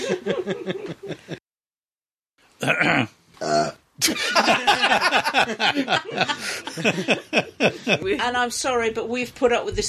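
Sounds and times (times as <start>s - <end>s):
people chuckling: 0.0s - 1.4s, 4.0s - 8.1s
speech: 0.1s - 1.1s, 2.7s - 9.8s
short throaty burps: 2.6s - 3.9s.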